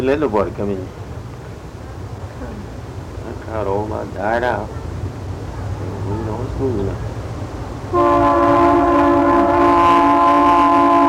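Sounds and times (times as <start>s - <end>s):
speech: 0.0s - 1.0s, 3.5s - 4.8s, 6.1s - 7.1s, 7.9s - 8.5s
low rumble of a passing train: 0.0s - 11.0s
multi-tone train horn blaring: 7.9s - 11.0s.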